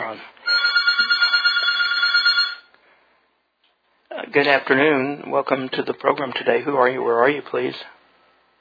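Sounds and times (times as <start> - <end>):
speech: 0.1 - 0.5, 4.4 - 8.0
telephone ringing with electronic trill for incoming call: 0.4 - 2.7.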